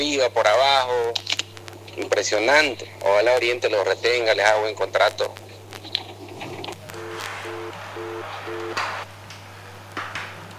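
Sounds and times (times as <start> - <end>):
speech: 0.0 - 1.3, 2.0 - 5.4
steady low hum: 0.0 - 10.5
busy tone after a dropped phone call: 6.8 - 8.8.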